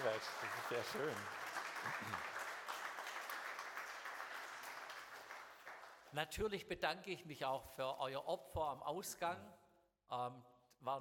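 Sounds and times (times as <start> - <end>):
speech: 0.0 - 2.4, 6.1 - 10.9
audience applause filling a large room: 0.0 - 6.1.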